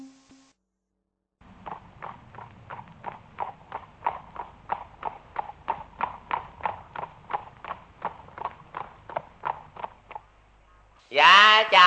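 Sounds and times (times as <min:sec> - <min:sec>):
horse hooves clip-clopping at a walking pace: 0:01.4 - 0:10.9
person speaking: 0:11.1 - 0:11.8.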